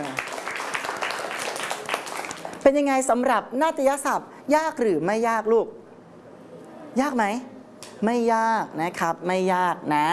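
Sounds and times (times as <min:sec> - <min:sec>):
children clapping in a classroom for a correct answer: 0:00.0 - 0:02.6
speech: 0:02.6 - 0:05.8, 0:07.0 - 0:10.1.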